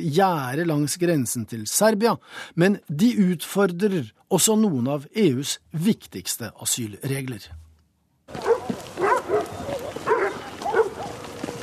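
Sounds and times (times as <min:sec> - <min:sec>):
speech: 0:00.0 - 0:07.6
dogs barking: 0:08.3 - 0:11.6.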